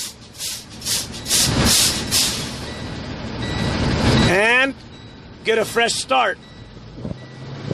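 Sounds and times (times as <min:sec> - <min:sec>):
truck air brakes hissing while being pumped down: 0:00.0 - 0:03.0
truck engine idling: 0:00.0 - 0:07.3
speech: 0:05.5 - 0:06.5.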